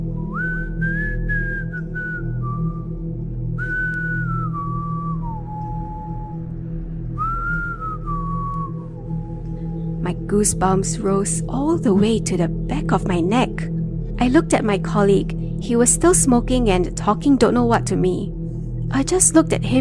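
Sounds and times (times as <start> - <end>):
steady low rumbling background: 0.0 - 19.8
person on a staircase whistling a slow wavering melody: 0.1 - 2.9, 3.6 - 10.2
speech: 10.2 - 19.8.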